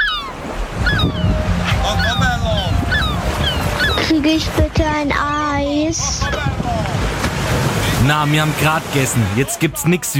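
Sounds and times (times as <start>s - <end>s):
wind noise: 0.0s - 8.0s
ocean waves breaking on a beach: 0.0s - 10.1s
speech: 4.3s - 10.1s.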